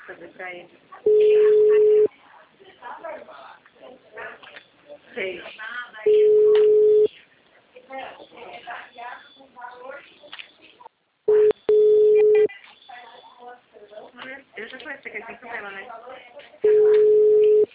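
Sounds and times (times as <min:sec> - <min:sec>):
speech: 0:00.1 - 0:02.0, 0:05.1 - 0:05.7
long steady mid-pitched telephone ringback beeps of an unanswered call: 0:01.1 - 0:02.1, 0:06.1 - 0:07.1, 0:11.3 - 0:12.5, 0:16.7 - 0:17.7.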